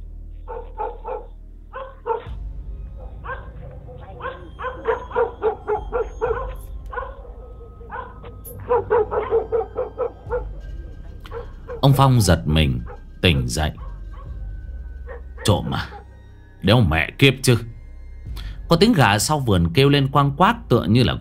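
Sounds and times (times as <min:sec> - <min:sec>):
low steady hum: 0:00.0 - 0:19.2
dogs barking in a village at night: 0:00.3 - 0:16.3
speech: 0:11.8 - 0:13.8, 0:15.4 - 0:16.0, 0:16.6 - 0:17.7, 0:18.7 - 0:21.1.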